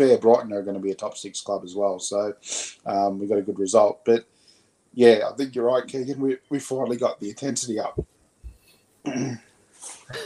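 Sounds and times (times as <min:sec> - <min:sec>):
speech: 0:00.0 - 0:04.3, 0:05.0 - 0:08.1, 0:09.0 - 0:10.2
person coughing harshly: 0:09.1 - 0:09.5, 0:10.1 - 0:10.2
rough throat clearing: 0:09.1 - 0:09.5, 0:10.1 - 0:10.2.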